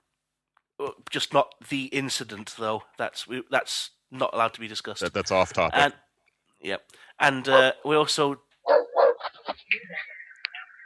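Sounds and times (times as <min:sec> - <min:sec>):
speech: 0:01.1 - 0:06.0, 0:06.6 - 0:08.9
dog barking: 0:07.5 - 0:07.8, 0:08.6 - 0:09.4
dog yipping and whimpering: 0:08.7 - 0:09.3.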